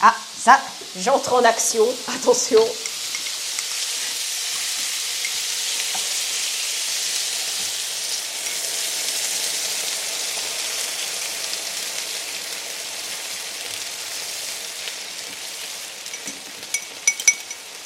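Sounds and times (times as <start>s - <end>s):
speech: 0.0s - 2.9s
broth sizzling in a pan with chicken and onions: 0.0s - 17.8s
faint clinks: 16.1s - 17.8s.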